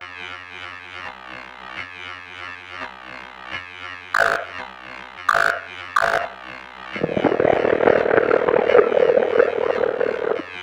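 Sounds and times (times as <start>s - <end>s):
swamp ambience: 5.3s - 10.6s.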